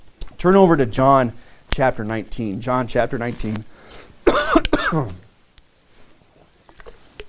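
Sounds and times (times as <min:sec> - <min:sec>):
speech: 0:00.4 - 0:03.9, 0:04.9 - 0:05.2
faint clicks and rustles: 0:01.6 - 0:07.2
person coughing with something caught in the throat: 0:04.2 - 0:05.3.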